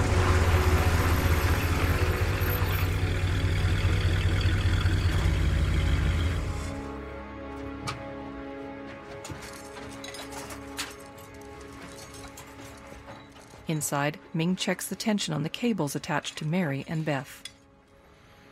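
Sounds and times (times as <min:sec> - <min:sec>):
car engine rumble as a car drives through rural countryside and pulls into a parking lot: 0:00.0 - 0:08.2
speech: 0:13.7 - 0:17.5.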